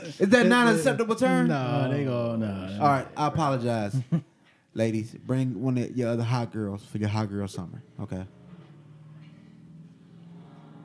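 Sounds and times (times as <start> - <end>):
speech: 0.0 - 8.4
car engine revving outside: 8.1 - 10.8.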